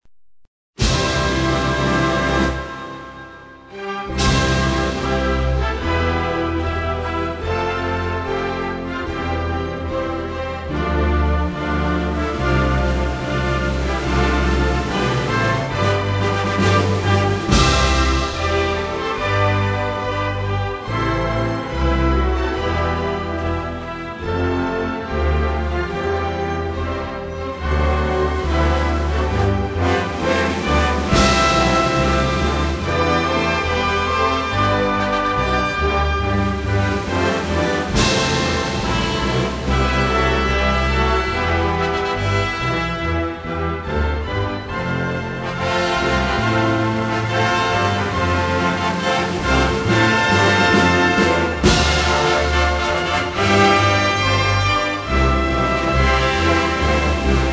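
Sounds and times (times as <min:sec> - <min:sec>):
instrumental anthem: 0:00.8 - 0:57.5.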